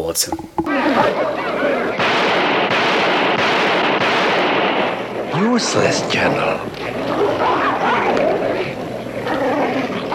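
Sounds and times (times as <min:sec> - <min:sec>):
speech: 0:00.0 - 0:02.4, 0:05.4 - 0:07.1
loud booming gunshots in a dramatized horror scene: 0:01.1 - 0:06.3
dense continuous roar: 0:01.1 - 0:10.1.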